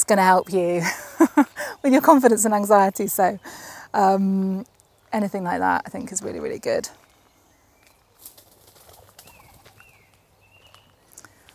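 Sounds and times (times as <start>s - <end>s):
speech: 0.1s - 7.0s
laughter: 0.8s - 1.8s
wood pigeons flapping out of a tree: 8.2s - 9.8s.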